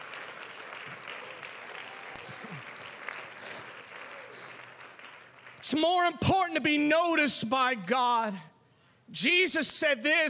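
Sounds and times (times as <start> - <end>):
congregation clapping hands: 0.0 - 6.8
speech: 5.7 - 8.5, 9.1 - 10.2.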